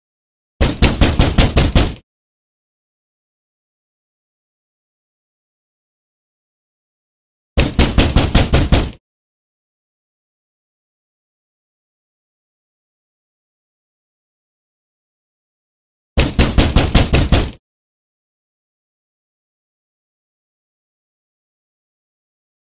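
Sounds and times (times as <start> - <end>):
door knock: 0.6 - 2.0, 7.6 - 9.0, 16.2 - 17.6.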